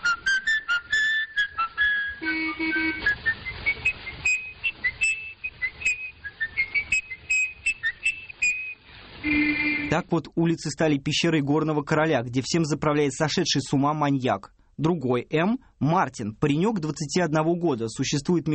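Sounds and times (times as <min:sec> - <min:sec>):
man whistling a menacing tune: 0:00.0 - 0:08.8
speech: 0:10.0 - 0:18.5.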